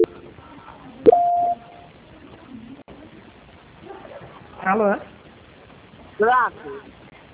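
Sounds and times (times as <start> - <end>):
short mid-pitched telephone beep during a call transfer: 1.1 - 1.8
speech: 4.7 - 5.1, 6.2 - 7.0.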